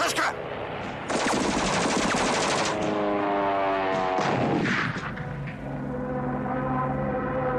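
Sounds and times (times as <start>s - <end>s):
heavy droning engine roar: 0.0s - 7.5s
machine gun bursts: 1.1s - 2.8s.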